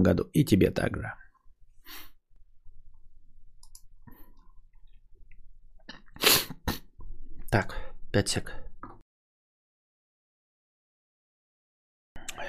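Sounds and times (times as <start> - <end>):
speech: 0.0 - 1.2, 7.5 - 8.6
man with a runny nose blowing his nose: 6.2 - 6.9.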